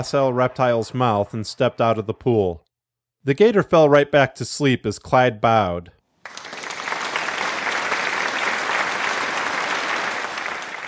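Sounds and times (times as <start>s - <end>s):
speech: 0.0s - 2.6s, 3.2s - 6.5s
canned crowd applause: 6.2s - 10.8s.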